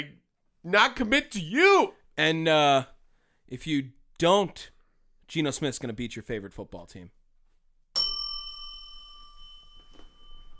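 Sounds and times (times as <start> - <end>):
speech: 0.0 - 2.9, 3.5 - 4.7, 5.3 - 7.2
single bright metallic bell strike: 8.0 - 10.5.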